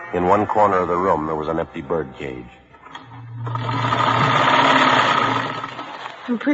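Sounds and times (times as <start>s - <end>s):
speech: 0.1s - 2.6s, 6.3s - 6.5s
sewing machine stitching ruffles on a dress in a back bedroom: 3.4s - 6.5s.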